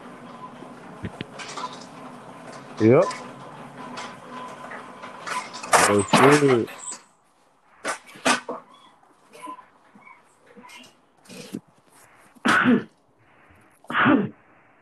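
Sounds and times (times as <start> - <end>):
speech: 1.0 - 1.2, 2.8 - 3.3, 5.9 - 6.8
shuffling: 4.3 - 14.8
quiet breathing: 11.2 - 12.4, 13.2 - 14.8
person sneezing: 12.4 - 12.9, 13.9 - 14.4.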